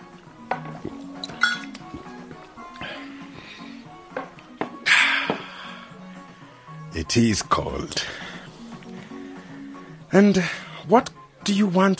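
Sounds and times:
beer glasses clinking during a toast: 0:00.5 - 0:02.0
speech: 0:07.0 - 0:08.2, 0:10.1 - 0:11.9.

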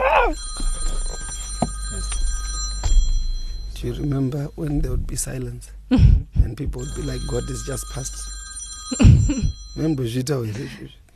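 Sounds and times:
low room hum: 0:00.0 - 0:11.1
mobile phone ringing: 0:00.4 - 0:04.3, 0:06.8 - 0:10.2
speech: 0:03.8 - 0:11.1.

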